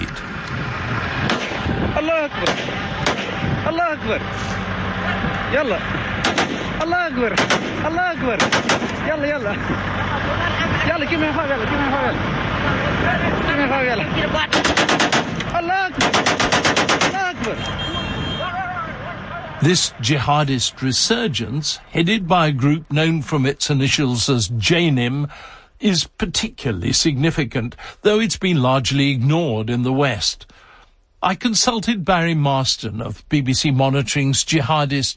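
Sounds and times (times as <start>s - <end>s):
heavy gunfire from militants ambushing a truck convoy: 1.2s - 1.7s, 2.4s - 3.4s, 6.2s - 9.1s, 14.5s - 17.4s
indistinct voices shouting and babbling: 1.5s - 14.6s, 17.0s - 22.1s
speech: 2.2s - 2.8s, 3.7s - 14.7s, 15.5s - 18.1s, 19.6s - 30.6s, 31.2s - 35.1s.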